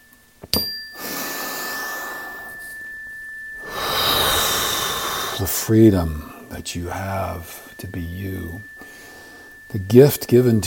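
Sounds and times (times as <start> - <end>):
deep cleansing breath inhaling and exhaling during a guided breathing exercise: 1.0 - 2.7, 3.6 - 6.5, 8.8 - 9.7
speech: 5.4 - 8.8, 9.7 - 10.6.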